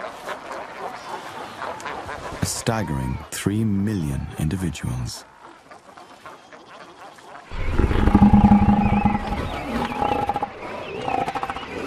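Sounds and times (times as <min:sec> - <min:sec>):
speech: 0:02.4 - 0:05.3
southern elephant seals fighting and roaring beside a penguin colony: 0:07.5 - 0:11.8.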